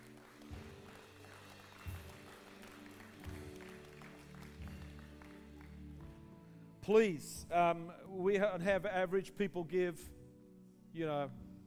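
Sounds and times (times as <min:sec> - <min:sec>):
audience applause: 0:00.0 - 0:05.9
speech: 0:06.9 - 0:10.2, 0:10.9 - 0:11.4.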